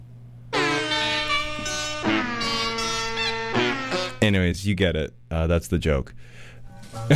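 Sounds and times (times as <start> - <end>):
brassy bicycle horns honking: 0.5 - 4.2
music: 0.5 - 4.2
speech: 4.3 - 7.1.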